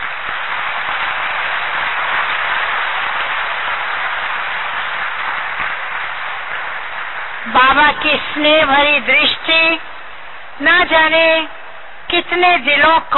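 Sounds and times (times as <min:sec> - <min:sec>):
large audience applauding in a hall: 0:00.0 - 0:08.0
speech: 0:07.6 - 0:09.9, 0:10.6 - 0:13.1.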